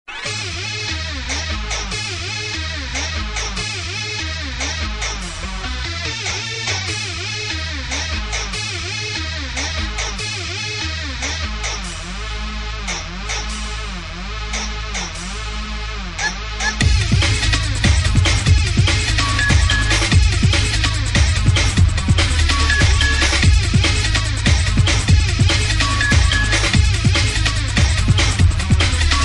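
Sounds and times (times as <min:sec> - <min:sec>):
drum and bass music: 0:00.0 - 0:29.2.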